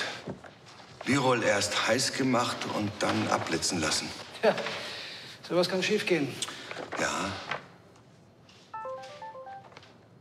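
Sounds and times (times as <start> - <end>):
speech: 1.0 - 4.9, 5.5 - 7.5
mobile phone incoming text message melody of quick stepping beeps: 8.8 - 9.8.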